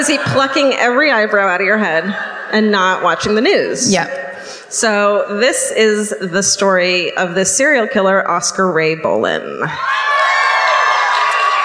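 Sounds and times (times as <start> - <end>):
speech: 0.0 - 10.2
audience applauding and cheering: 9.8 - 11.6.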